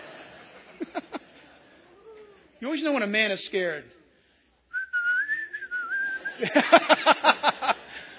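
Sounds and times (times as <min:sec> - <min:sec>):
laughter: 0:00.0 - 0:02.5, 0:05.6 - 0:08.1
speech: 0:02.6 - 0:04.0, 0:06.4 - 0:06.9
person whistling a tune: 0:04.7 - 0:06.3.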